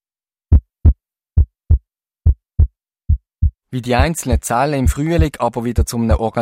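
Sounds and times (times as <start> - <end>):
low thudding heartbeat: 0.5 - 6.2
speech: 3.7 - 6.4.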